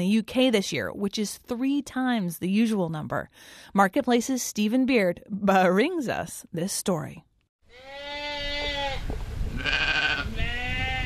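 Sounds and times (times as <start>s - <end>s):
speech: 0.0s - 8.1s
grazing sheep bleating in the English countryside: 7.7s - 9.0s, 9.6s - 11.0s.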